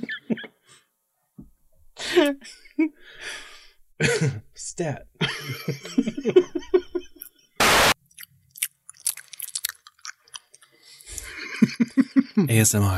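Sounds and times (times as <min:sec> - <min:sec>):
speech: 0:02.2 - 0:06.7, 0:11.7 - 0:12.9
loud brief burst of noise: 0:07.6 - 0:08.0
chips being chewed with crisp crunching: 0:08.0 - 0:10.7
laughter: 0:11.2 - 0:12.5.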